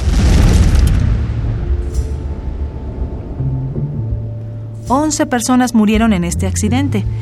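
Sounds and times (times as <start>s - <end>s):
oil platform explosion boom: 0.0s - 5.2s
speech: 4.9s - 7.2s.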